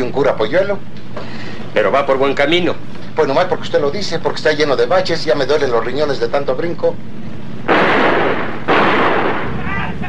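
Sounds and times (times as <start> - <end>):
speech: 0.1 - 7.1
gunshots fired into the air beside a bus by riders on horseback: 7.7 - 10.0.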